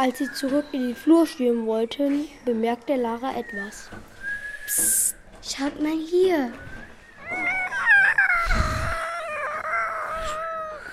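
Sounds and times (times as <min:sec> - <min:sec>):
speech: 0:00.0 - 0:04.1, 0:04.7 - 0:06.7
long wavering howling whine: 0:07.1 - 0:10.4.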